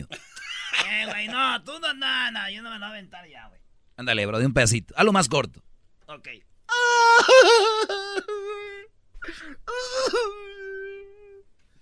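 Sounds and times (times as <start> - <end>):
speech: 0.0 - 0.2, 0.9 - 10.5
person mimicking a woman crying with wailing sobs: 6.7 - 8.9, 9.7 - 11.4.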